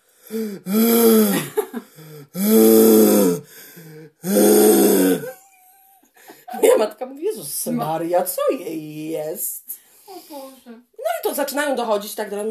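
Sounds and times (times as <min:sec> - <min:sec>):
person mimicking an overfed dog's heavy wheezy panting: 0:00.0 - 0:05.3
speech: 0:00.3 - 0:02.6, 0:07.4 - 0:12.4.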